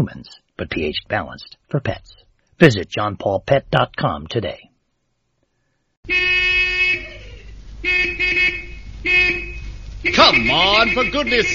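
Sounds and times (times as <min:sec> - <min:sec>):
speech: 0:00.0 - 0:04.7, 0:06.0 - 0:06.5, 0:09.0 - 0:11.5
car horns honking in a traffic jam: 0:06.0 - 0:11.5
low rumble of idling traffic: 0:06.1 - 0:11.5.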